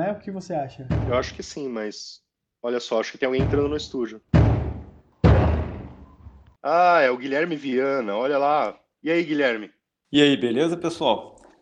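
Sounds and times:
speech: 0.1 - 4.6, 6.6 - 11.3
heavy thuds of a door being kicked: 0.9 - 1.5, 3.4 - 6.4.

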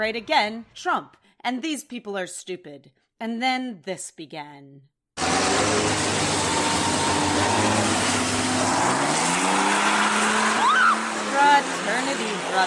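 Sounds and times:
speech: 0.0 - 4.9, 11.4 - 12.6
sharp rising whine: 5.2 - 11.1
spinning truck tires squealing against the ground: 5.2 - 12.6
truck engine roaring and revving hard during burnouts: 5.2 - 12.6.

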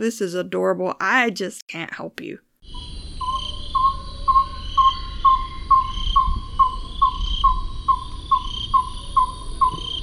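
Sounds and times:
speech: 0.0 - 2.9
thin steady insect buzz: 2.6 - 10.0
Carthala scops owl hooting: 2.7 - 10.0.

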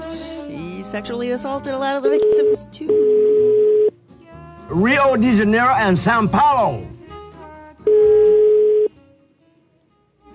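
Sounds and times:
speech: 0.9 - 3.6, 4.7 - 7.0
telephone call ringing to an upscale place in Brazil: 2.2 - 3.9, 7.9 - 8.9.

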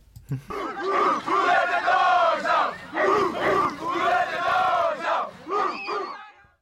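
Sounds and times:
laughter: 0.3 - 6.1
high school football team from Michigan shouting a rhythmic team chant: 0.5 - 6.4.

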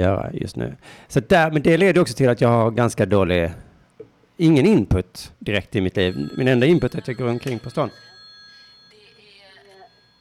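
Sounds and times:
speech: 0.0 - 3.6, 4.4 - 8.2
phone ringing with an electronic incoming-call tone: 6.0 - 10.1.

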